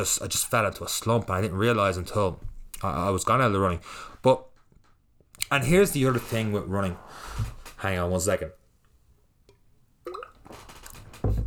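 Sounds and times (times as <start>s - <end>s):
speech: 0.0s - 4.5s, 5.5s - 8.6s
heavy thump or gulp: 10.1s - 11.0s
bottle squeaking and sloshing: 10.1s - 11.4s
water gurgling softly: 10.1s - 11.4s.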